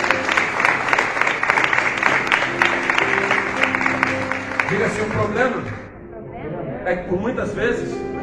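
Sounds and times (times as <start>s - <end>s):
large crowd applauding in praise of God: 0.0s - 5.9s
speech: 4.9s - 5.8s, 6.9s - 8.1s.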